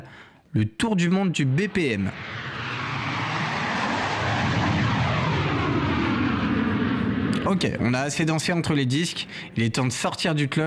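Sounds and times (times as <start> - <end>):
speech: 0.5 - 2.5, 7.5 - 10.6
airplane engine roar: 1.4 - 9.6.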